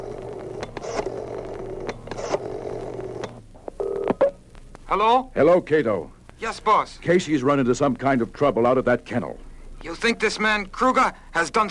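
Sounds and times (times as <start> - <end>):
brief telephone ringing tone: 0.0 - 4.4
steady telephone dial tone: 3.8 - 4.2
speech: 4.9 - 11.6.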